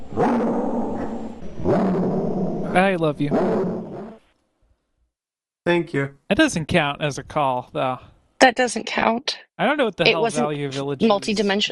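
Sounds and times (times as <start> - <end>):
dog vocalization played in reverse: 0.0 - 4.2
speech: 2.8 - 3.8, 5.6 - 11.7.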